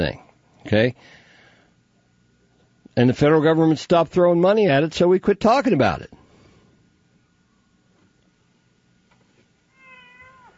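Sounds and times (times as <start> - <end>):
speech: 0.0 - 1.2, 3.0 - 6.2
low noise: 0.0 - 10.5
cat meowing: 9.7 - 10.5.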